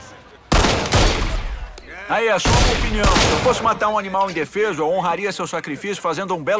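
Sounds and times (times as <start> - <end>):
gunfire aimed at chickens: 0.5 - 1.8, 2.4 - 3.9
speech: 2.1 - 6.5.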